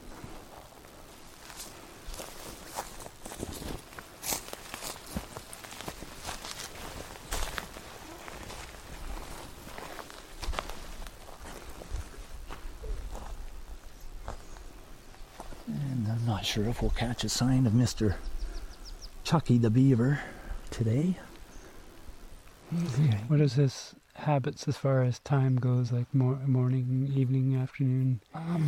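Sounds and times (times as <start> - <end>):
footsteps walking across a beaver dam on a wetland pond: 0.0 - 17.6
speech: 16.5 - 18.3, 19.3 - 21.3, 22.7 - 28.6.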